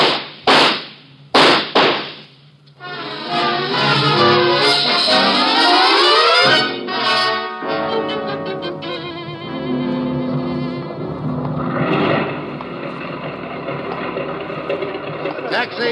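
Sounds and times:
gunshots in an audio drama: 0:00.0 - 0:02.4
sustained droning tonal sound: 0:02.2 - 0:15.9.

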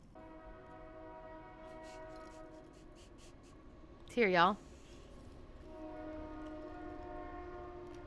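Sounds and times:
train horn holding a long steady chord: 0:00.0 - 0:03.1, 0:05.6 - 0:08.0
train rolling by: 0:00.0 - 0:08.0
speech: 0:04.2 - 0:04.6.

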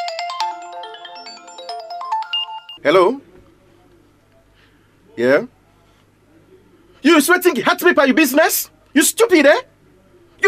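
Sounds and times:
mobile phone ringtone melody of electronic tones: 0:00.0 - 0:02.8
speech: 0:02.8 - 0:03.3, 0:05.2 - 0:05.6, 0:07.0 - 0:09.7.

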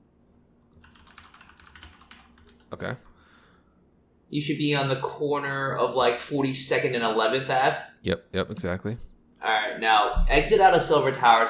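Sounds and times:
low hum: 0:00.0 - 0:11.4
fingers typing on a computer keyboard: 0:00.8 - 0:02.8
speech: 0:02.7 - 0:03.1, 0:04.3 - 0:11.4.

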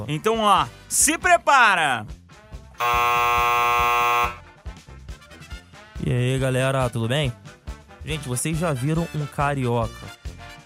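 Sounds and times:
speech: 0:00.0 - 0:02.2, 0:02.8 - 0:04.4, 0:06.0 - 0:07.4, 0:08.0 - 0:10.2
loud steady electronic alarm buzzer signaling the start of a talent performance: 0:02.8 - 0:04.4.

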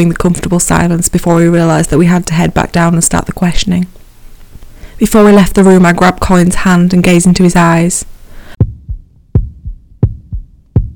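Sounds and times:
speech: 0:00.0 - 0:04.0, 0:05.0 - 0:08.1
heartbeat thudding in lub-dub double beats: 0:08.6 - 0:10.9.

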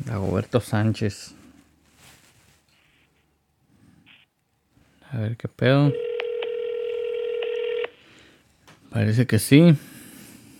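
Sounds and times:
faint hiss: 0:00.0 - 0:10.5
speech: 0:00.1 - 0:01.4, 0:05.1 - 0:06.1, 0:08.9 - 0:09.9
steady electronic tone of a cellphone call being dialed: 0:05.9 - 0:08.0.

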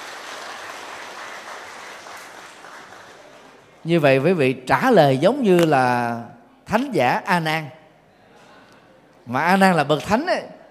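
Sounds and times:
crowd applauding: 0:00.0 - 0:03.8
speech: 0:03.8 - 0:07.8, 0:09.3 - 0:10.6.

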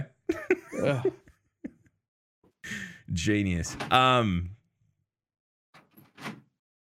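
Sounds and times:
laughter: 0:00.0 - 0:01.9
speech: 0:00.8 - 0:01.2, 0:02.7 - 0:04.6
desk drawer yanked open with a rattling clatter: 0:05.8 - 0:06.4.

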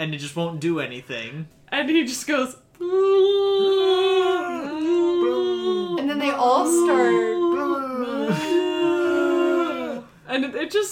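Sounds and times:
speech: 0:00.0 - 0:03.7, 0:06.2 - 0:07.4, 0:10.4 - 0:10.9
voice imitating a dinosaur roar: 0:02.8 - 0:10.1.

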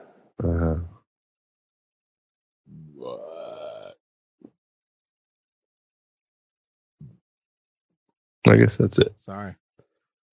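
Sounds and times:
loud belches: 0:02.7 - 0:04.0
speech: 0:08.4 - 0:09.6.

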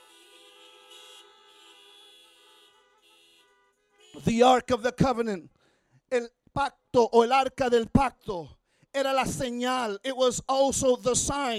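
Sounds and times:
several car horns honking: 0:00.0 - 0:05.1
speech: 0:04.2 - 0:11.5.

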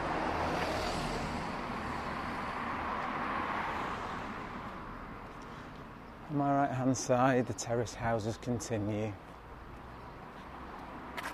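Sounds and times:
bus arriving and passing by on a quiet street of terraced houses: 0:00.0 - 0:05.8
speech: 0:06.3 - 0:09.3.

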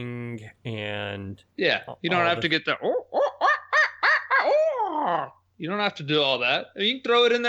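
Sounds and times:
speech: 0:00.0 - 0:03.3, 0:05.0 - 0:07.4
human voice imitating owl hoots in owl-calling contest: 0:00.0 - 0:05.4.

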